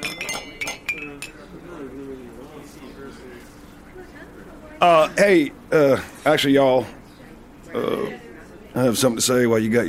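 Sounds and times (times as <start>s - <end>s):
glasses of champagne and other drinks clinking in a toast: 0.0s - 1.6s
murmuring voices: 0.0s - 8.8s
speech: 4.0s - 7.0s, 7.7s - 8.2s, 8.8s - 9.8s.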